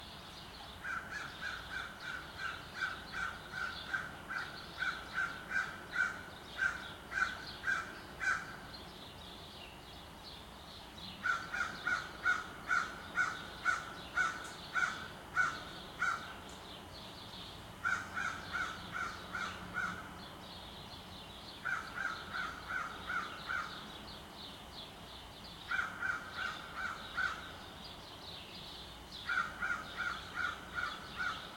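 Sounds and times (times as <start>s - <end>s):
sparrows chirping in a Montreal suburb: 0.0s - 31.5s
crow in a suburban city area of Montreal Canada: 0.8s - 8.6s, 11.2s - 16.3s, 17.8s - 20.0s, 21.6s - 23.8s, 25.7s - 27.5s, 29.3s - 31.5s.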